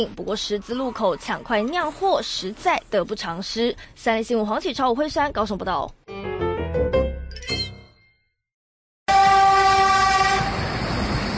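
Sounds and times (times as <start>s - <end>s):
speech: 0.0s - 6.1s
passing train horn: 9.1s - 10.8s
train rushing past: 9.2s - 11.3s.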